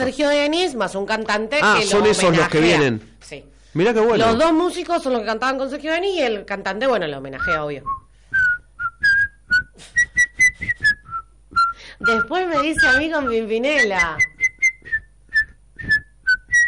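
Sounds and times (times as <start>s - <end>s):
speech: 0.0s - 8.0s, 12.0s - 14.3s
person whistling a light tuneful melody: 7.4s - 16.6s.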